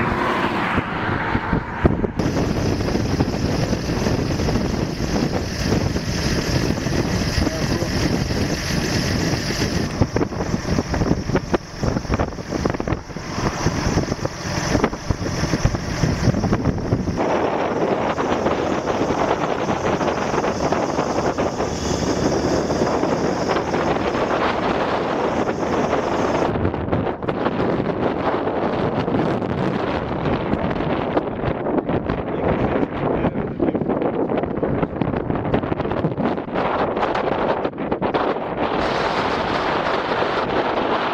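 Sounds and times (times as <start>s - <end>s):
violent tornado winds roaring: 0.0s - 41.1s.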